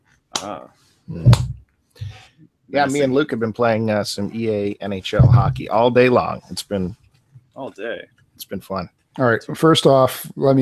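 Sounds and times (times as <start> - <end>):
slow hand clapping: 0.4 - 0.6, 1.2 - 1.6
speech: 0.4 - 7.0, 7.6 - 10.5.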